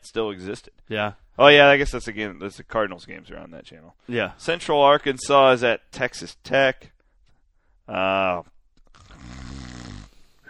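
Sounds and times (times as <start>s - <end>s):
speech: 0.1s - 7.0s, 7.9s - 8.5s
loud snoring with harsh buzzing snort and rumbling breathy snore: 9.0s - 10.4s.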